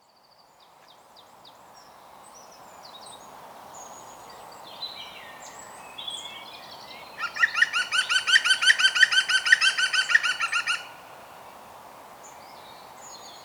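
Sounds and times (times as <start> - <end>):
European green woodpecker laughing call, Picus viridis: 7.2 - 10.9.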